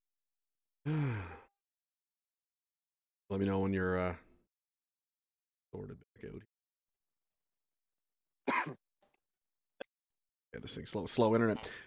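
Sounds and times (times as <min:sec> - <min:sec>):
speech: 0:00.8 - 0:01.4, 0:03.3 - 0:04.3, 0:05.7 - 0:06.5, 0:08.6 - 0:08.8, 0:10.6 - 0:11.8
person coughing: 0:08.5 - 0:08.8.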